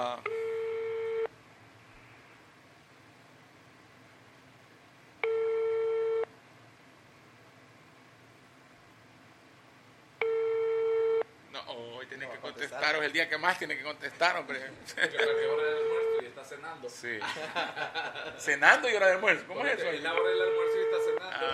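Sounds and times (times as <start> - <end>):
outgoing-call telephone ringback tone: 0.3 - 1.3, 5.2 - 6.3, 10.2 - 11.2, 20.2 - 21.2
speech: 11.6 - 21.5
laughter: 14.8 - 15.9, 17.2 - 18.6.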